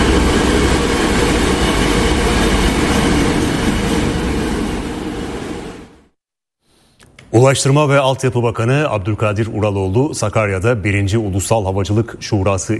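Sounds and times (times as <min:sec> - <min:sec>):
high-speed passenger train with 221 seats on the Çerkezköy–Kapıkule railway line in Turkey: 0:00.0 - 0:06.1
speech: 0:07.4 - 0:12.7.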